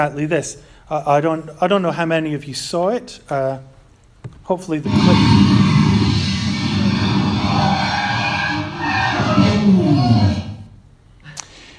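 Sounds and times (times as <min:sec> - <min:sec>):
speech: 0:00.0 - 0:03.7, 0:04.5 - 0:05.7
Rimac electric supercar skidding and crashing: 0:04.9 - 0:10.6.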